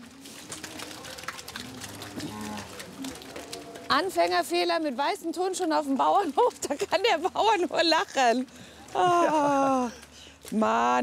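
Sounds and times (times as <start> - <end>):
farmyard noise: 0.0 - 7.6
cows mooing on an organic dairy farm: 0.4 - 4.4
speech: 3.9 - 11.0.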